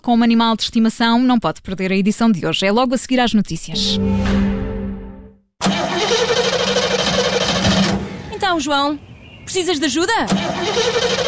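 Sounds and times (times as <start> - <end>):
speech: 0.0 - 4.7, 8.5 - 11.2
truck engine sputtering and cranking, trying to start: 5.6 - 8.4, 10.2 - 11.2.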